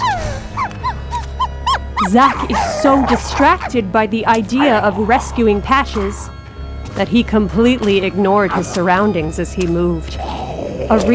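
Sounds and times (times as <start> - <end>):
dog high-pitched yelping barks: 0.0 - 3.7
dog whining: 0.0 - 5.8
speech: 2.1 - 6.4, 7.0 - 11.1.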